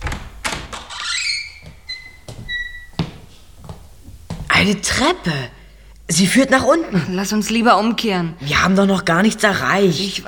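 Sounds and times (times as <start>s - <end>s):
door creaking open on squeaky hinges: 0.0s - 3.1s
speech: 4.6s - 10.2s.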